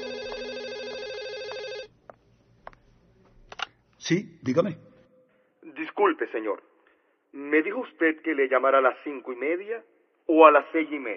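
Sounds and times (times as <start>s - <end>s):
telephone ringing in a fast warbling electronic trill: 0.0s - 1.9s
speech: 4.1s - 4.9s, 6.0s - 6.7s, 7.3s - 11.1s.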